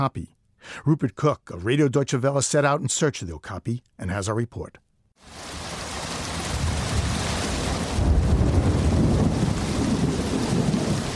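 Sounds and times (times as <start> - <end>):
speech: 0.0 - 5.6
torrential rainforest rain downpour: 5.2 - 11.1.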